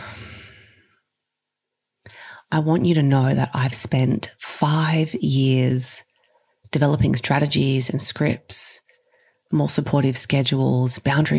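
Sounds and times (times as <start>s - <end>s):
deep breath: 0.0s - 1.0s, 2.0s - 2.5s
speech: 2.5s - 6.1s, 6.7s - 8.8s, 9.5s - 11.3s.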